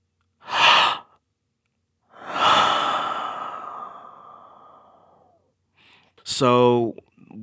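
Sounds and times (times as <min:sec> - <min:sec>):
short sharp gasping breath: 0:00.4 - 0:01.2, 0:02.1 - 0:06.1
speech: 0:06.3 - 0:07.4.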